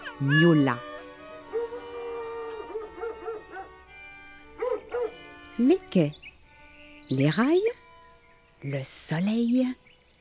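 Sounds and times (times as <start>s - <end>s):
steady humming musical tone: 0.0s - 9.9s
speech: 0.2s - 0.9s, 5.6s - 6.2s, 7.1s - 7.8s, 8.6s - 9.8s
dog whining: 1.5s - 3.8s, 4.6s - 5.2s
dog barking: 2.5s - 3.8s, 4.6s - 5.2s.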